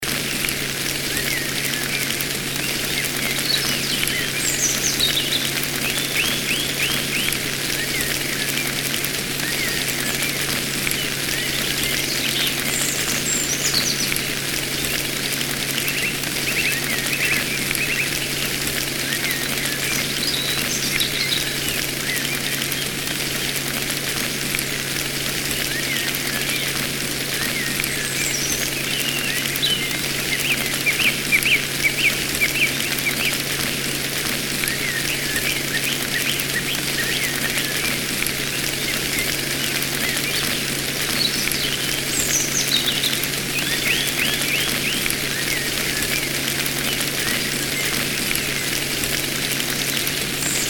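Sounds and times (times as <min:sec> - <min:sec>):
rain in a forest: 0:00.0 - 0:50.6
birds in a forest: 0:00.1 - 0:50.6.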